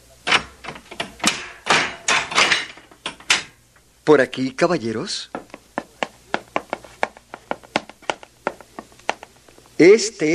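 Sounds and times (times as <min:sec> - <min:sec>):
door being opened with heavy latch and lock clunking and rattling: 0:00.3 - 0:03.6
speech: 0:04.1 - 0:05.4, 0:09.8 - 0:10.3.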